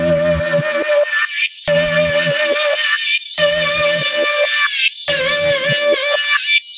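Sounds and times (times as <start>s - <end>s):
filtered chaos guitar: 0.0s - 6.3s.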